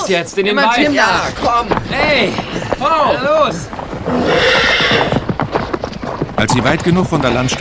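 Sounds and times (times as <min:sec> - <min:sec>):
steady noise: 0:00.0 - 0:07.6
speech: 0:00.1 - 0:05.1, 0:06.4 - 0:07.6
horse hooves clip-clopping: 0:00.2 - 0:07.6
horse whinnying: 0:01.9 - 0:06.2.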